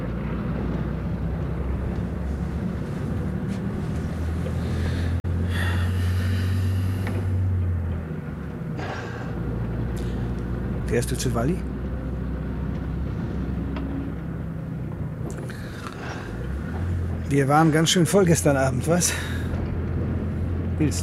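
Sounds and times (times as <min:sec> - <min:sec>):
bus engine rumble inside an empty bus: 0:00.0 - 0:21.0
speech: 0:10.9 - 0:11.8, 0:17.3 - 0:19.4, 0:20.8 - 0:21.0.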